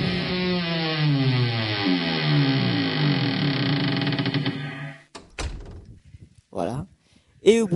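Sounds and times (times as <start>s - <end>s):
heavy wooden door creaking on its hinges: 0.0s - 6.0s
heavy wooden door shutting with thuds: 2.0s - 5.9s
speech: 7.4s - 7.7s.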